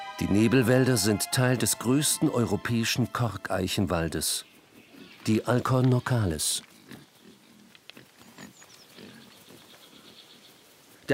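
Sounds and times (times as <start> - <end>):
speech: 0.2 - 4.5, 5.2 - 6.7
faint bird chirps in a cork oak forest: 4.4 - 11.0
semi-wild Iberian black-footed pigs grunting in a cork oak forest: 6.3 - 10.2.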